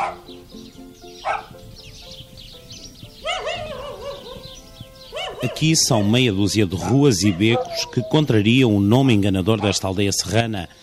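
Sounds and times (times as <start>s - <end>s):
restless dogs barking in narrow stone village streets: 0.0s - 0.5s, 1.2s - 1.6s, 3.1s - 9.9s
sparrows chirping and twittering: 0.0s - 10.8s
speech: 5.4s - 10.8s.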